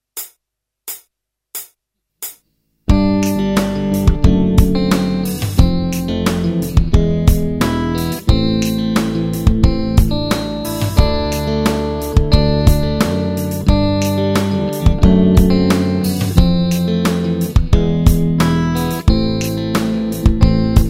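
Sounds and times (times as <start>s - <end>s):
guitar jam: 2.9s - 20.8s.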